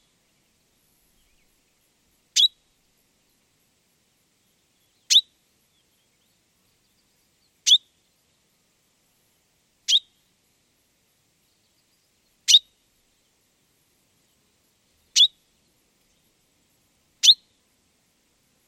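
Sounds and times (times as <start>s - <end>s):
common chaffinch calling: 7.7s - 7.9s, 15.1s - 15.4s, 17.2s - 17.5s.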